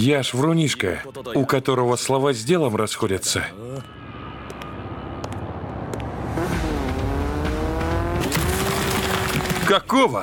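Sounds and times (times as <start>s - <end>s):
speech: 0.0s - 4.0s, 9.7s - 10.2s
motorcycle engine revving: 6.2s - 9.7s.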